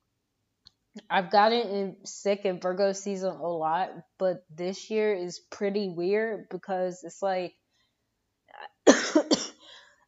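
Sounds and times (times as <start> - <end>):
speech: 1.0 - 7.6
person with a lingering illness coughing: 8.8 - 9.8.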